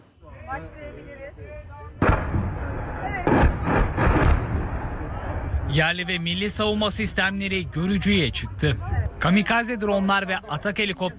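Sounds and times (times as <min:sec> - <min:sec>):
artillery fire during night phase of a military exercise: 0:02.0 - 0:05.8
speech: 0:05.7 - 0:11.1.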